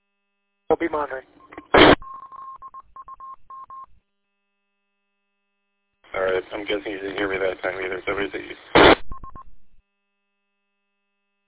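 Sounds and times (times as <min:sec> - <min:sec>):
speech: 0:00.7 - 0:01.4, 0:06.2 - 0:08.9
burst of radio noise: 0:01.7 - 0:02.0, 0:08.7 - 0:09.1.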